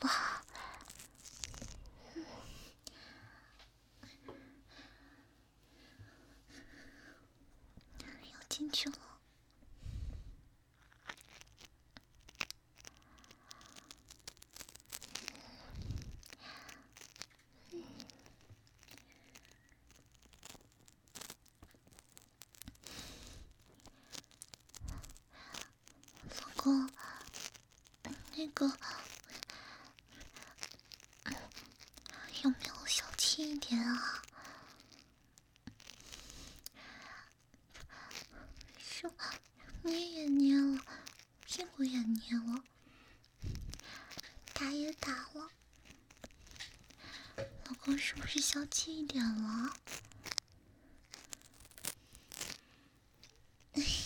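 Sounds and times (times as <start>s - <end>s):
speech: 0.0s - 0.2s, 8.7s - 9.1s, 48.6s - 49.8s
faint whispering: 0.0s - 1.0s, 7.9s - 9.2s, 24.8s - 27.4s, 28.0s - 29.5s, 30.2s - 34.8s, 37.1s - 42.7s, 43.5s - 45.6s, 47.0s - 49.8s, 53.7s - 54.0s
person imitating a dog chewing on an ear with crunching and nibbling mouth sounds: 0.0s - 2.0s, 10.7s - 54.0s.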